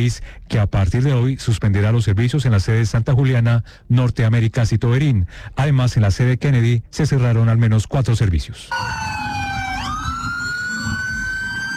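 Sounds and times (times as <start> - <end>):
speech: 0.0 - 9.2
ambulance sirens wailing: 8.7 - 11.7.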